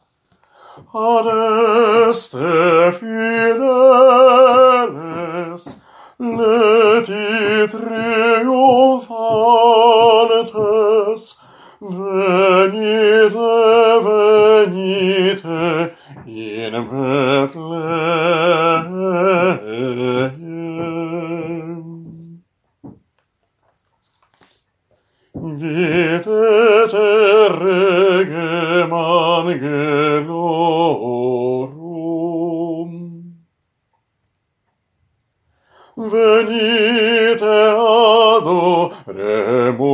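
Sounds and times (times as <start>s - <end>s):
bass voice singing a carol: 0.8s - 22.5s, 25.4s - 33.5s, 36.0s - 39.9s.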